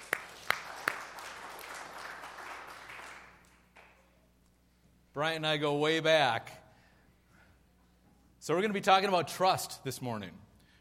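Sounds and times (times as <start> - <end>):
studio audience applauding a volunteer: 0.0 - 3.9
speech: 5.2 - 6.6, 8.4 - 10.4.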